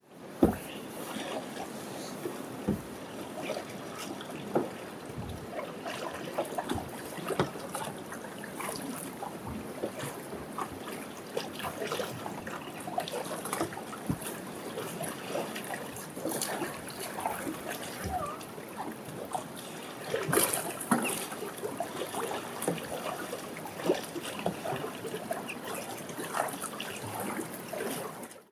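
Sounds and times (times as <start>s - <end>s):
kayak paddling over an aqueduct: 0.0s - 28.4s.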